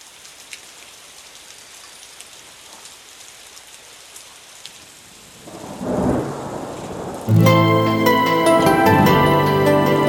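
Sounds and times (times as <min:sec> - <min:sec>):
rain falling outside an open window: 0:00.0 - 0:10.0
low rumble of thunder: 0:05.4 - 0:07.3
sustained musical tones: 0:07.3 - 0:10.0.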